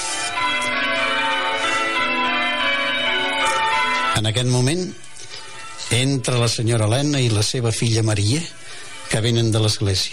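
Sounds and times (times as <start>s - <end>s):
church bells pealing joyfully on a Sunday morning in June: 0.0s - 10.1s
speech: 4.2s - 5.0s, 5.8s - 10.1s.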